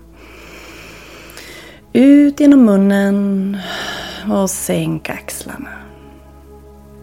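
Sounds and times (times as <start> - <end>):
deep inhale through the nose during a breathing exercise: 0.0 - 1.9, 3.6 - 4.3
speech: 2.0 - 5.9.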